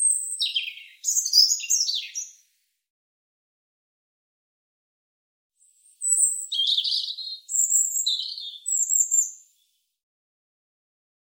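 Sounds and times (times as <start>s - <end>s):
European robin singing: 0.0s - 2.4s, 5.8s - 9.6s.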